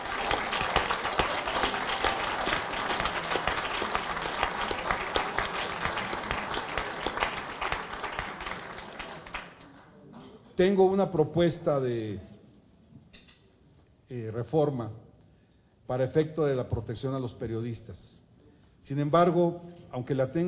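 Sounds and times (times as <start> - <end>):
audience applause welcoming a female guest at a forum: 0.0 - 9.8
speech: 10.6 - 12.3, 14.1 - 15.0, 15.9 - 18.2, 18.8 - 20.4.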